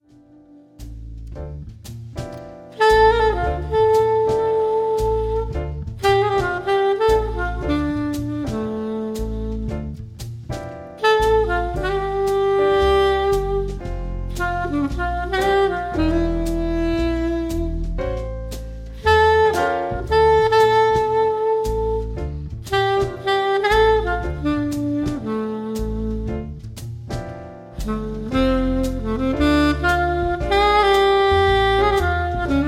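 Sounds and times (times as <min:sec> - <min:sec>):
woman playing saxophone: 0:00.0 - 0:01.0, 0:02.8 - 0:09.7, 0:11.0 - 0:18.2, 0:19.0 - 0:26.6, 0:27.8 - 0:32.6.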